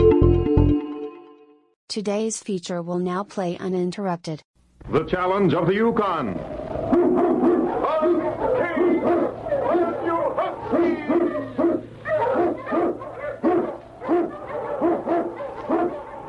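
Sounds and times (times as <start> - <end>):
speech: 1.9 - 6.6
pack of Eskimo sled dogs barking in storm and snow: 6.8 - 16.2.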